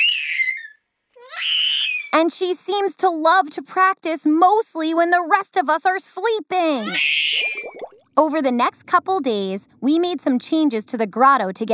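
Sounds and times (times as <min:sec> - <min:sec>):
high-pitched squealing screams of a baby mermaid: 0:00.0 - 0:02.1, 0:06.8 - 0:07.8
speech: 0:02.1 - 0:11.7.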